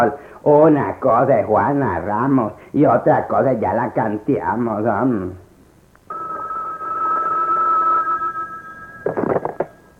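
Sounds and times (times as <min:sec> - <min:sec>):
speech: 0:00.0 - 0:05.4
telephone ringing with a steady electronic tone: 0:06.1 - 0:09.9.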